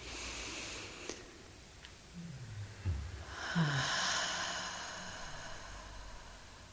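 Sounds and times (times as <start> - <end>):
slow deliberate deep breath in and out: 0.0 - 1.3, 2.6 - 6.7.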